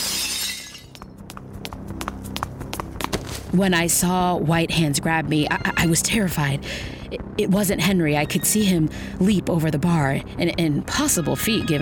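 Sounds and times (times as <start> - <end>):
glass shards falling and bouncing: 0.0 - 0.9
glass shattering: 0.0 - 1.0
speech: 3.5 - 11.7.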